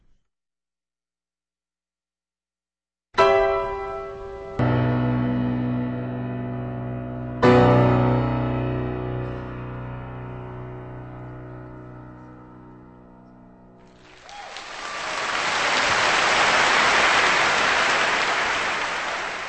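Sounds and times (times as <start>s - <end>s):
sustained piano chord ringing at the end of a solo piano performance: 3.2s - 13.9s
large audience applauding loudly for the pianist: 13.9s - 19.4s.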